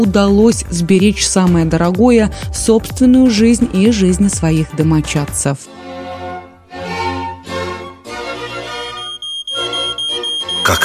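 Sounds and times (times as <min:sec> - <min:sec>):
speech: 0:00.0 - 0:05.8, 0:10.7 - 0:10.8
autonomous smoke detector beeping: 0:08.9 - 0:10.8.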